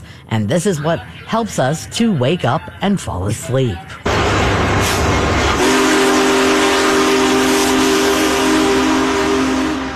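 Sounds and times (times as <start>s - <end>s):
steam train rumbling and hissing: 0.0s - 9.9s
speech: 0.3s - 4.1s
steam locomotive whistle: 4.8s - 9.9s.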